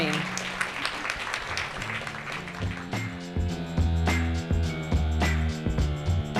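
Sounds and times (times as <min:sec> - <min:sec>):
audience applauding: 0:00.0 - 0:03.2
music with deep bass line and sustained tones: 0:02.2 - 0:06.3.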